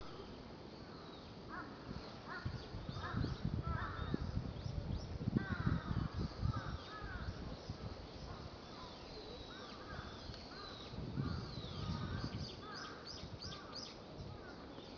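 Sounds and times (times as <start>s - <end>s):
low background noise: 0.0s - 14.9s
birds chirping at Meiji Shrine, Tokyo: 0.1s - 14.9s
birds giving harsh caw-like calls at Meiji Shrine, Tokyo: 1.5s - 4.2s, 5.4s - 7.4s, 9.5s - 13.8s.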